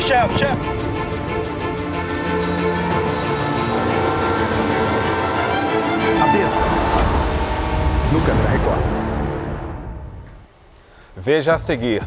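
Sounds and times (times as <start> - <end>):
speech: 0.1 - 0.9, 8.1 - 9.1, 11.2 - 12.0
train rumbling on rails with metallic roar: 0.3 - 10.2
sustained horn-like tone: 1.8 - 10.1.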